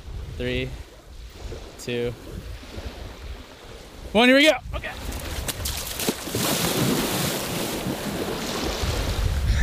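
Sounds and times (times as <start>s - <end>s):
gusty wind noise across the microphone: 0.0s - 9.6s
speech: 0.4s - 2.9s, 4.1s - 5.1s
person splashing into open bay water: 5.0s - 9.0s.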